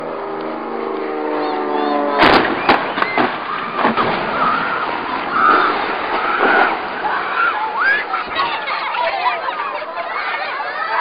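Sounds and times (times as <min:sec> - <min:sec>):
plane: 0:00.0 - 0:08.4
people screaming: 0:01.1 - 0:10.9.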